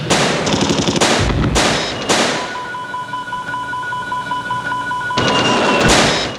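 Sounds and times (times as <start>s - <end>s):
anti-aircraft gunfire: 0.0s - 2.7s
booming air burst explosions: 1.0s - 2.7s
steady high-pitched tones: 1.3s - 5.2s.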